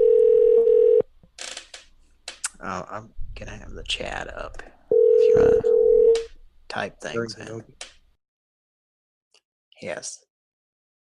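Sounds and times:
telephone line hum while dialing into a hotel room: 0.0s - 1.0s, 4.9s - 6.2s
speech: 2.6s - 7.9s, 9.8s - 10.3s.

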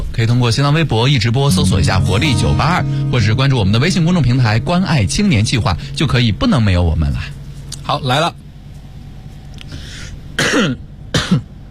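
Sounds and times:
speech: 0.2s - 8.4s, 10.5s - 11.5s
rough throat-clearing coughs: 10.4s - 11.5s.

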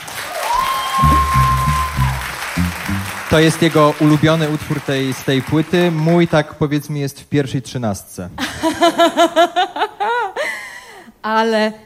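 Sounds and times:
applause during a live radio concert session: 0.0s - 6.6s
whistle-like tone: 0.6s - 2.9s
low droning notes: 1.0s - 3.5s
speech: 3.3s - 9.7s, 11.2s - 11.8s.

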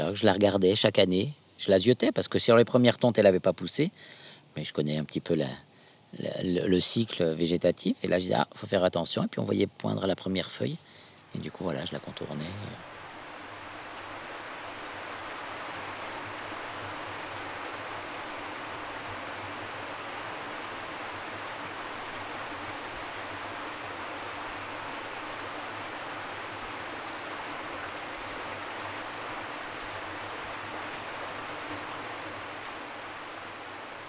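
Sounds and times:
speech: 0.0s - 12.9s
Lignon river water rushing: 9.5s - 34.0s.

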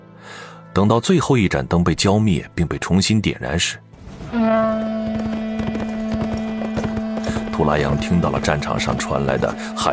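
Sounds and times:
speech: 0.8s - 4.6s, 7.6s - 9.9s
galloping horse hooves on a battlefield: 4.6s - 9.6s.

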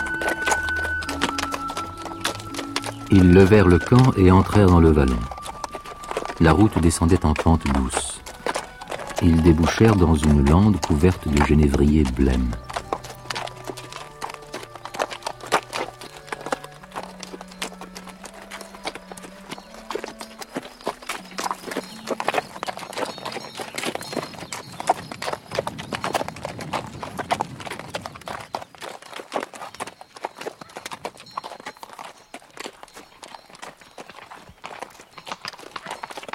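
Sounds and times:
soft tonal melody: 0.0s - 22.7s
dragoon's horse clip-clopping on a road through juniper heathland: 0.0s - 36.3s
speech: 3.1s - 5.4s, 6.4s - 8.1s, 9.2s - 12.6s.

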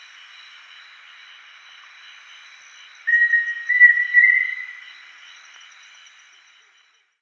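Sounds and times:
Pheasant cuckoo Dromococcyx phasianellus whistled song: 3.1s - 4.8s.

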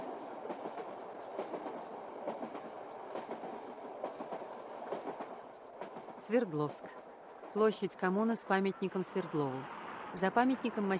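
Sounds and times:
faint clickety-clack of train wheels running underneath: 0.0s - 8.7s
long-distance train rumbling in motion, heard from the vestibule between carriages: 0.0s - 10.9s
speech: 6.2s - 7.0s, 7.6s - 10.9s.

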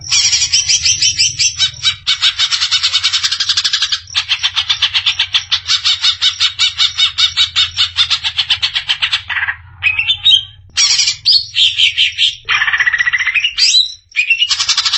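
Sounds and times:
greater green leafbird song: 0.0s - 14.8s.

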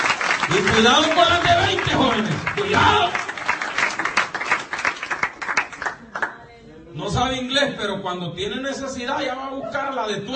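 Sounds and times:
church congregation applauding during a sermon: 0.0s - 6.3s
speech: 0.5s - 3.2s, 7.0s - 10.3s.

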